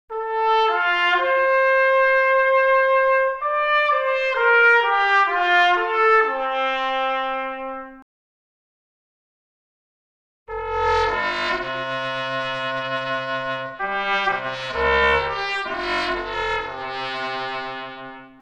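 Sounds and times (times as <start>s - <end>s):
trumpet: 0.1s - 8.0s, 10.5s - 18.3s.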